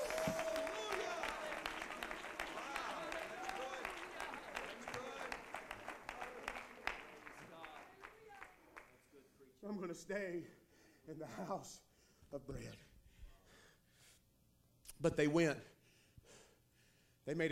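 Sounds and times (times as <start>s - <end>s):
audience clapping: 0.0s - 9.2s
speech: 9.9s - 12.9s, 15.0s - 15.8s, 17.3s - 17.4s.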